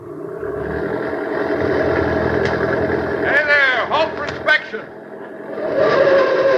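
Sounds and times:
car engine running as the vehicle pulls away: 0.0s - 6.5s.

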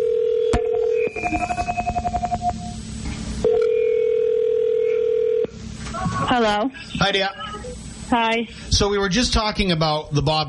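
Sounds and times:
telephone dial tone: 0.0s - 2.4s, 3.4s - 5.5s
telephone keypad beeps: 0.6s - 2.7s
speech: 1.2s - 1.6s, 6.4s - 10.4s.

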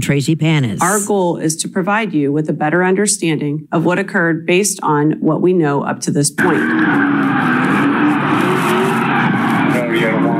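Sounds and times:
speech: 0.0s - 8.8s
car engines revving hard during burnouts: 6.4s - 10.3s
tires screeching during car burnouts: 6.4s - 10.3s.

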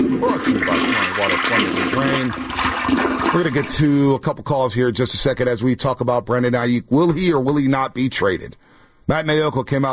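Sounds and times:
toilet flush: 0.0s - 3.8s
speech: 0.2s - 9.9s.

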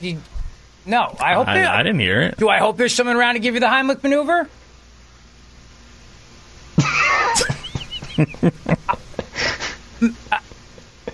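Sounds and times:
speech: 0.0s - 4.6s, 7.4s - 7.6s, 8.2s - 10.4s
laughter: 6.8s - 11.1s
throat clearing from a tickle in the throat: 10.0s - 10.4s.

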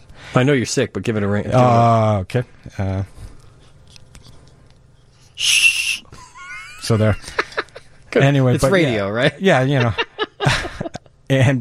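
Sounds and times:
speech: 0.4s - 3.2s, 5.4s - 5.7s, 6.9s - 7.4s, 8.1s - 10.7s, 11.3s - 11.5s
toy whistle shrill blast: 5.4s - 6.0s
laughter: 6.1s - 8.0s, 8.6s - 11.1s.

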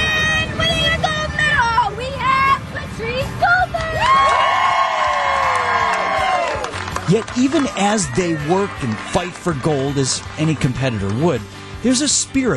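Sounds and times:
children's voices: 0.0s - 4.1s
dense crowd babble: 0.0s - 12.1s
crowd cheering at a Special Olympics medal ceremony: 3.8s - 11.2s
high whoops: 4.0s - 6.8s
speech: 7.1s - 12.5s.

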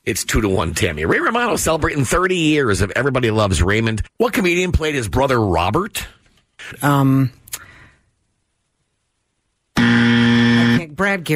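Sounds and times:
speech: 0.0s - 7.6s, 11.0s - 11.3s
loud harsh quiz game time-up buzzer: 9.8s - 10.9s.

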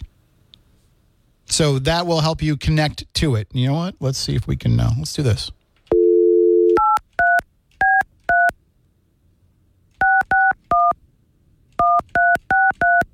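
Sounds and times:
speech: 1.6s - 5.6s
telephone dial tone: 5.9s - 6.8s
telephone keypad dialing tones: 5.9s - 8.5s, 10.0s - 10.9s, 11.8s - 13.1s.

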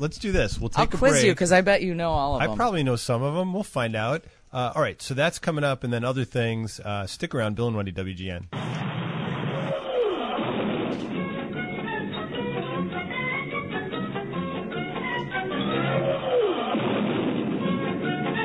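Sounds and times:
speech: 0.0s - 8.6s
energetic cartoon theme music: 9.0s - 18.4s.

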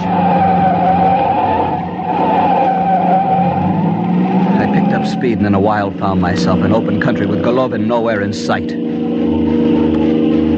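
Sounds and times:
car tires skidding: 0.0s - 10.5s
rumbling car engine: 0.0s - 10.5s
speech: 5.3s - 8.9s.

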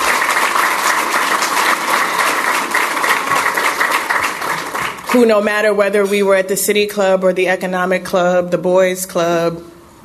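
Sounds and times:
crowd applauding: 0.0s - 5.4s
speech: 5.1s - 9.7s.

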